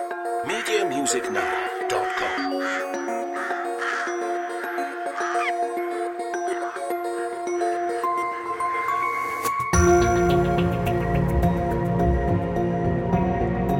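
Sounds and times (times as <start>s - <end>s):
sustained musical tones: 0.0s - 13.7s
speech: 0.4s - 2.9s
crows cawing: 0.4s - 7.4s.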